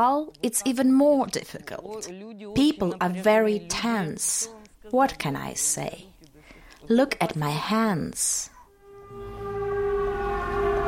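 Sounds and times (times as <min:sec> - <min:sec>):
speech: 0:00.0 - 0:06.1, 0:06.8 - 0:08.5
air raid siren wailing at a port: 0:08.7 - 0:10.8.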